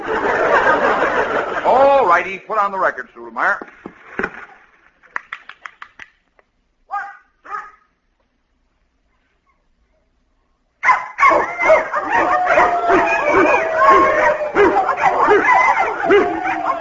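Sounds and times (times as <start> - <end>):
laughter: 0.0 - 2.3, 12.0 - 16.8
speech: 2.1 - 3.9
dog barking and whining frantically: 6.9 - 7.9, 10.8 - 16.8.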